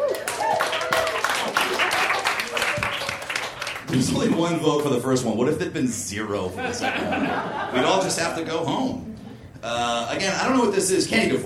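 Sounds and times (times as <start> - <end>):
voices calling out and cheering: 0.0 - 4.4
audience applause and clapping: 0.0 - 4.9
speech: 3.9 - 11.4
laughter: 6.5 - 8.8.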